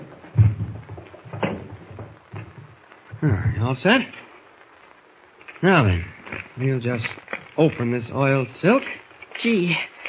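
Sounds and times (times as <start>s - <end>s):
wooden chair bumping and knocking as it settles into place: 0.0s - 2.8s
speech: 3.2s - 4.2s, 5.6s - 9.9s.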